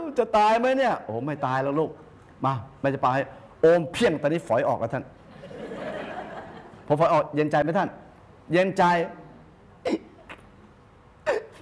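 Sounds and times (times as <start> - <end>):
quiet noise: 0.0 - 11.6
speech: 0.2 - 5.5, 6.9 - 9.2
laughter: 5.3 - 6.9
child hiccuping as a seizure eases: 9.8 - 10.4, 11.2 - 11.6.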